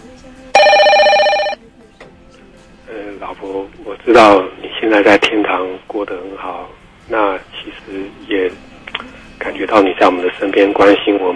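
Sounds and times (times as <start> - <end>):
electronic telephone-style bell ringing: 0.6 - 1.6
speech: 3.2 - 8.6, 9.4 - 11.3.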